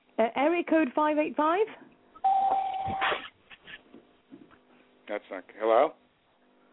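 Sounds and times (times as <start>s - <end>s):
speech: 0.2s - 1.9s, 5.1s - 6.0s
steady electronic beep from a phone: 2.2s - 3.1s.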